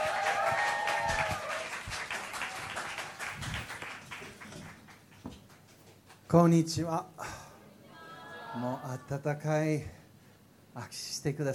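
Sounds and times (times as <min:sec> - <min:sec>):
audience whooping: 0:00.0 - 0:02.9, 0:07.8 - 0:09.2
audience applause welcoming a pastor as speaker in Shibuya Japan: 0:00.0 - 0:05.2
speech: 0:06.3 - 0:07.2, 0:08.6 - 0:10.0, 0:10.8 - 0:11.5.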